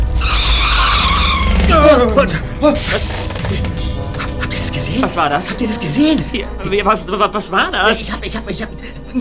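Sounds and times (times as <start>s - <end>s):
car tire squealing as its rear wheel jams: 0.1s - 3.3s
speech: 2.1s - 3.8s, 4.8s - 9.1s.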